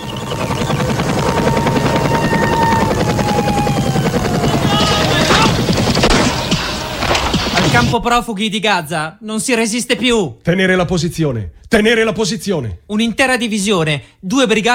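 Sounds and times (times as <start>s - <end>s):
whining engine tones: 0.0s - 7.6s
helicopter rotor chop: 0.0s - 8.0s
rapid bursts of gunfire: 4.5s - 8.0s
speech: 7.8s - 14.7s.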